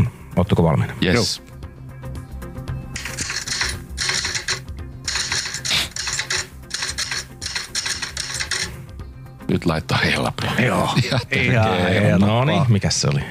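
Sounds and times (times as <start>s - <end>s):
speech: 0.4s - 1.5s, 9.6s - 13.2s
rapid mechanical typewriter typing: 3.0s - 8.7s.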